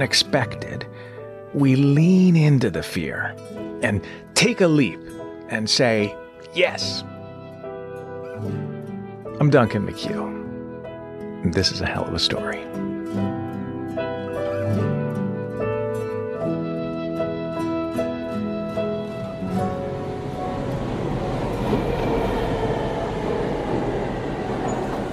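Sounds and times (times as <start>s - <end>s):
speech: 0.0s - 0.8s, 1.5s - 7.1s, 8.4s - 8.6s, 9.4s - 10.4s, 11.4s - 13.3s
melodic music: 0.0s - 25.1s
subway trains rumbling and hissing in the 14th Street subway station in New York City: 19.1s - 25.1s.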